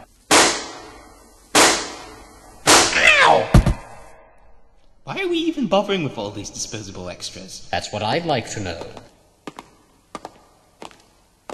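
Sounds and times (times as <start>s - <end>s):
gunshots: 0.3s - 4.0s
speech: 5.2s - 9.1s.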